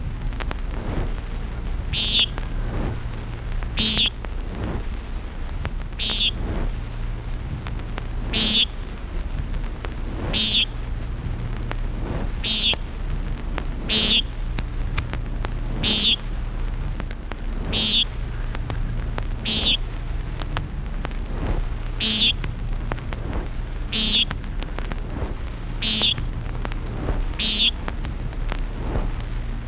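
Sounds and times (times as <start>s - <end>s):
constant low rumble of noise: 0.0s - 29.6s
common nighthawk buzzy nasal calls: 1.4s - 4.9s, 5.9s - 29.6s.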